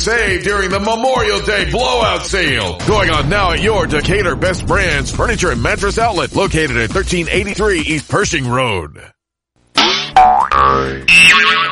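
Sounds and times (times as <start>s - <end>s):
speech: 0.0s - 9.2s, 10.2s - 11.7s
cartoon boings standing in for a car bouncing on bad shocks: 9.8s - 11.7s.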